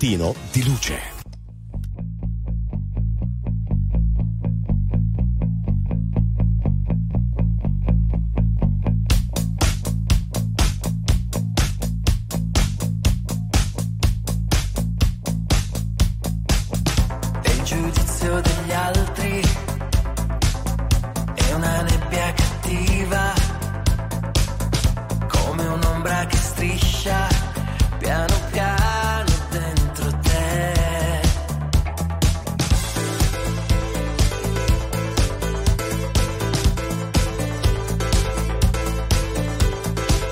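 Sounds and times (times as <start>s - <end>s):
speech: 0.0s - 1.2s
pulsing bass line in a rock song: 0.0s - 40.2s
distorted rock band: 9.1s - 40.2s
driving drum beat in a rock song: 9.1s - 40.2s.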